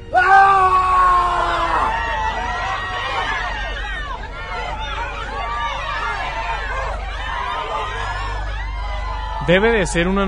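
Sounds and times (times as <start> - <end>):
agitated overlapping cries and murmuring voices of panicked people: 0.0 - 10.2
harrowing human scream from a thick fog surrounding a warehouse: 0.1 - 2.1
laughter: 1.1 - 9.6
speech: 9.5 - 10.2.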